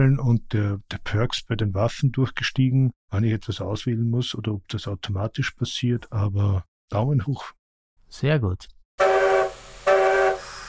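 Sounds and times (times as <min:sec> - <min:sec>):
speech: 0:00.0 - 0:09.1
harmonic train whistle blasts: 0:09.0 - 0:10.6.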